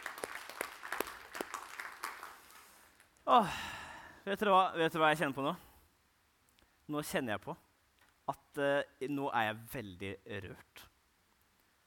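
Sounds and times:
audience at a mission church in Kristiansand clapping: 0.0 - 3.2
speech: 3.3 - 5.7, 6.9 - 7.6, 8.3 - 10.9.

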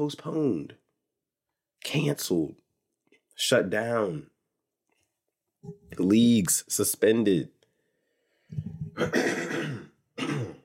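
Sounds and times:
speech: 0.0 - 0.8, 1.8 - 2.6, 3.4 - 4.3, 5.6 - 7.6, 8.5 - 10.5
raspy throat clearing: 8.8 - 10.6.

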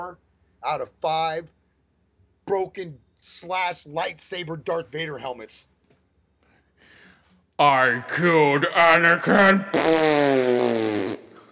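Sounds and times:
speech: 0.0 - 1.6, 2.5 - 5.7, 7.6 - 11.2
loud drawn-out buzzy fart: 9.7 - 11.4.

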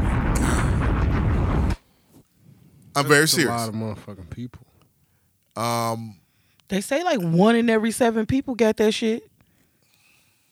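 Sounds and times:
bomb explosion: 0.0 - 1.8
speech: 3.0 - 4.7, 5.6 - 9.3.

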